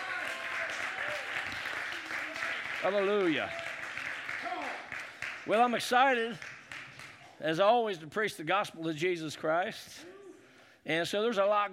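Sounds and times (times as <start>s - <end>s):
church congregation clapping hands in praise: 0.0s - 7.4s
speech: 2.8s - 3.6s, 5.5s - 6.5s, 7.4s - 10.1s, 10.8s - 11.7s.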